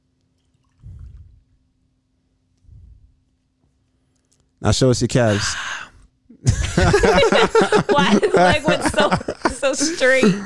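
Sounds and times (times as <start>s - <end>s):
faint steady hum: 0.0s - 10.4s
person chugging a sour IPA beer: 0.4s - 1.6s
speech: 4.6s - 5.7s, 6.8s - 10.4s
laughter: 6.4s - 10.4s.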